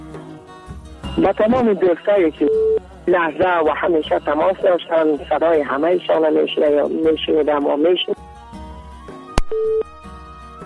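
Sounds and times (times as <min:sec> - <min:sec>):
speech: 0:01.2 - 0:08.2, 0:09.5 - 0:09.8
telephone beep after a call drops: 0:02.4 - 0:02.8, 0:09.4 - 0:09.9.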